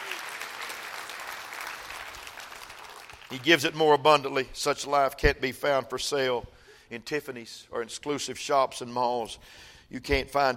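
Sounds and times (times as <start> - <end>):
crowd of people clapping their hands: 0.0 - 3.8
speech: 3.3 - 10.5.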